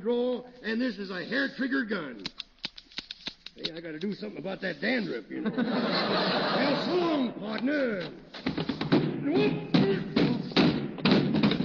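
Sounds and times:
speech: 0.0s - 2.4s, 3.6s - 8.3s, 9.2s - 9.7s
laughter: 5.3s - 7.4s
person falling down cellar stairs: 8.4s - 11.6s.

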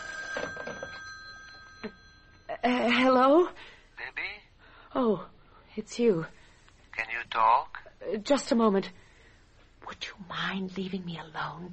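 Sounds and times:
telephone ringing with high electronic tone: 0.0s - 2.6s
speech: 2.6s - 3.6s, 5.0s - 6.4s, 7.4s - 9.0s, 10.2s - 11.7s.

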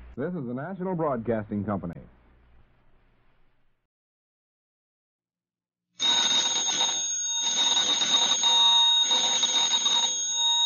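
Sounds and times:
speech: 0.2s - 2.2s
telephone bell ringing: 6.0s - 10.6s.

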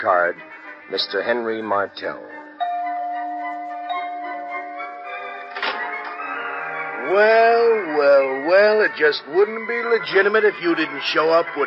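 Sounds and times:
speech: 0.0s - 2.4s, 7.1s - 11.6s
doorbell pressed by a finger chiming: 2.6s - 6.5s.

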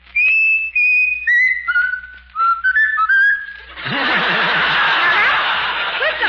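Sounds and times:
person whistling a short tune: 0.1s - 3.7s
loud breathy laughter: 3.7s - 6.2s.

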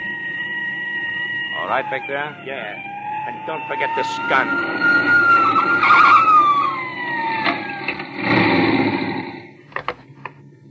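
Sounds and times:
high tone sliding down in pitch: 0.0s - 8.2s
car engine running after overheating and stalling: 0.0s - 10.6s
speech: 1.7s - 5.2s.

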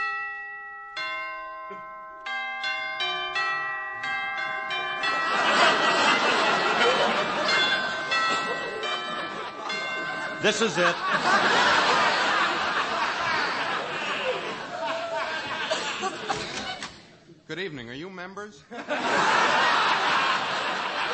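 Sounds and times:
doorbell chime at a fourth-floor apartment: 0.0s - 13.7s
speech: 1.7s - 1.9s, 10.4s - 11.8s, 17.6s - 21.1s
laughter: 5.0s - 17.2s, 18.7s - 21.1s.

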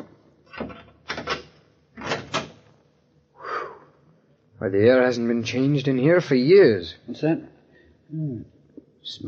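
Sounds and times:
door being opened with rattling latch and scraping hinges: 0.0s - 2.7s
speech: 4.6s - 7.5s, 8.1s - 9.2s.

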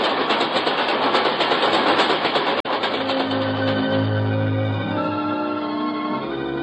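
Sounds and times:
rattling train wheel noise: 0.0s - 5.4s
train passing on tracks: 0.0s - 6.6s.

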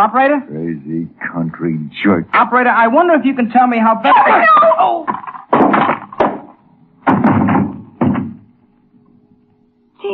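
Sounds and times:
speech: 0.0s - 6.0s
heavy dull blows of a paperweight on a man's head: 5.1s - 8.5s.

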